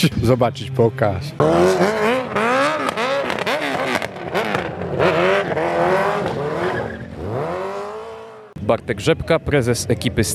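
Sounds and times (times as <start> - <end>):
speech: 0.0 - 2.1, 8.8 - 10.3
sport motorcycle engine revving hard in a stunt burnout: 0.0 - 8.6
motorcycle tire squealing and hissing against the pavement in a stunt burnout: 1.4 - 8.5.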